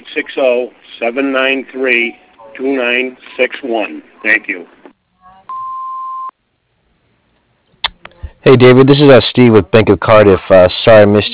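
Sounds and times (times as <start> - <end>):
speech: 0.2 - 4.8, 8.4 - 11.3
voicemail beep on a business answering machine: 5.5 - 6.3.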